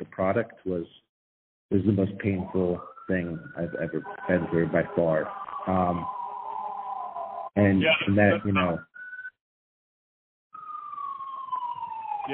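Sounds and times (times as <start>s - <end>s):
speech: 0.2s - 1.1s, 1.7s - 6.2s, 7.6s - 8.9s
ambulance siren wailing outside: 1.8s - 9.3s, 10.5s - 12.3s.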